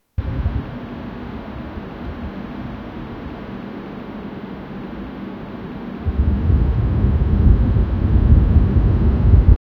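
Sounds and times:
wind blowing fast: 0.2 - 3.4, 5.8 - 9.6.

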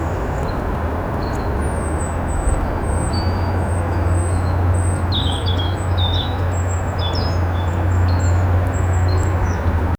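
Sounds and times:
birds in a park: 0.0 - 9.9.

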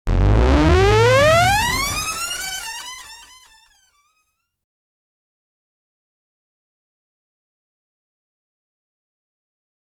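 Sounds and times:
gameplay fail sound effect: 0.1 - 3.8.

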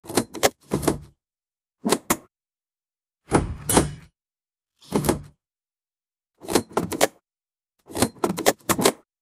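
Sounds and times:
cartoon chest opening: 0.0 - 1.2, 1.8 - 2.3, 3.2 - 4.2, 4.8 - 5.4, 6.3 - 7.2, 7.8 - 9.1.

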